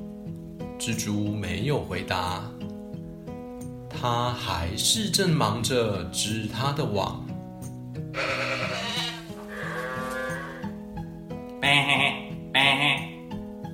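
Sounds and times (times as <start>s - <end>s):
soft steady musical backing: 0.0s - 13.7s
speech: 0.8s - 2.6s, 4.0s - 7.3s
sheep bleating in wavering cries: 8.1s - 10.8s, 11.6s - 13.2s.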